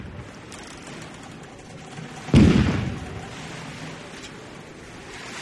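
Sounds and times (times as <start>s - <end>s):
cannon fire salute booms: 2.3s - 3.2s.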